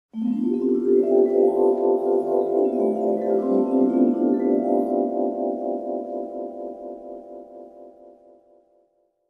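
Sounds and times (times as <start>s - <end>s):
dreamy mallet sound effect: 0.2s - 8.2s.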